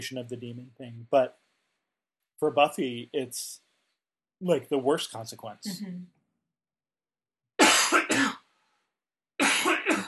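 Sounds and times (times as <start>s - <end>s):
speech: 0.0s - 1.5s, 2.4s - 3.6s, 4.4s - 6.2s
harsh raspy coughing: 7.6s - 8.5s, 9.4s - 10.0s.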